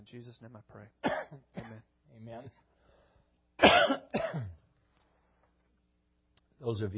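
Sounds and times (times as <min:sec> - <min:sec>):
speech: 0:00.0 - 0:02.7, 0:03.6 - 0:04.6, 0:06.6 - 0:06.9
man coughing harshly: 0:01.0 - 0:01.9, 0:03.6 - 0:04.7.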